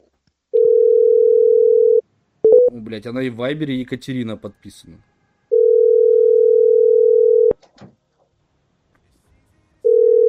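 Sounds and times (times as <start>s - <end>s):
telephone line tone after dialing a mobile number: 0.6s - 2.7s, 5.5s - 7.6s, 9.8s - 10.2s
speech: 2.8s - 5.1s.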